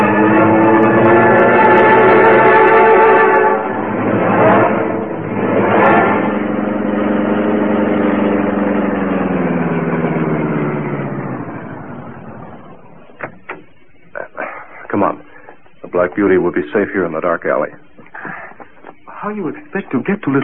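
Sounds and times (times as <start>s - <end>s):
car driving off: 0.0s - 14.3s
speech: 16.2s - 17.9s, 19.2s - 20.4s.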